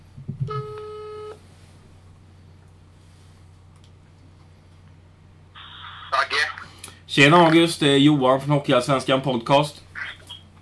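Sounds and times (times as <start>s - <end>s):
phone ringback tone when placing a phone call: 0.5s - 1.4s
speech: 7.1s - 9.8s.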